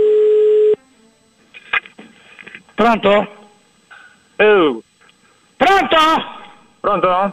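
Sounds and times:
loud steady telephone tone: 0:00.0 - 0:00.8
speech: 0:02.8 - 0:03.4, 0:04.4 - 0:04.9, 0:05.8 - 0:07.3.

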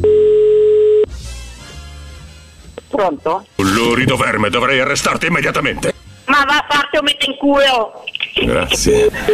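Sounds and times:
telephone call tone: 0:00.0 - 0:01.1
speech: 0:03.0 - 0:09.3.

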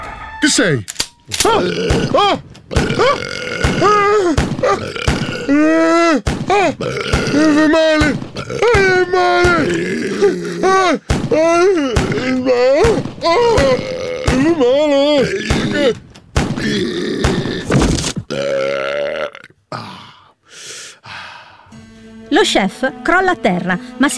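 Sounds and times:
speech: 0:00.4 - 0:16.0, 0:22.4 - 0:24.1
exaggerated comic burps: 0:01.5 - 0:05.8, 0:06.7 - 0:07.7, 0:08.3 - 0:08.9, 0:09.5 - 0:10.9, 0:13.7 - 0:16.0, 0:16.6 - 0:20.2.

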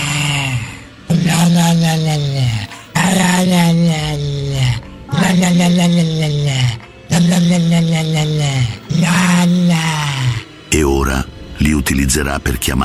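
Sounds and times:
dog growling: 0:00.0 - 0:10.5
speech: 0:12.1 - 0:12.8.

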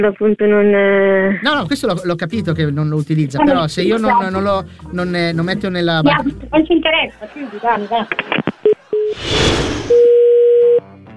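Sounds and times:
speech: 0:00.0 - 0:10.1
laughter: 0:06.3 - 0:09.0
telephone tone after a dropped call: 0:08.6 - 0:09.2, 0:09.9 - 0:10.8.

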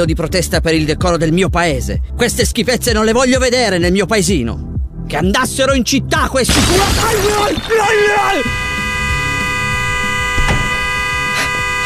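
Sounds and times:
speech: 0:00.0 - 0:08.6
car horn honking: 0:06.5 - 0:11.8.

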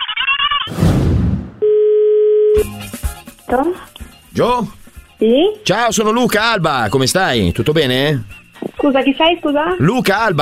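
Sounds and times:
burst of noise: 0:00.7 - 0:01.6
telephone tone while dialing a friend: 0:01.6 - 0:02.6
speech: 0:03.5 - 0:10.4.

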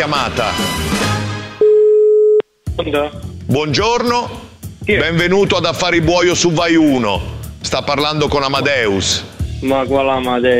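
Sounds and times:
speech: 0:00.0 - 0:01.1, 0:02.8 - 0:10.5
telephone busy tone after the caller hung up: 0:01.6 - 0:02.4.

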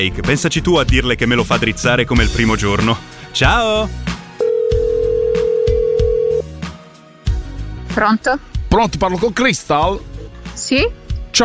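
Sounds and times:
speech: 0:00.0 - 0:04.1, 0:08.0 - 0:11.4
telephone ringback tone from an outgoing call: 0:04.4 - 0:06.5.

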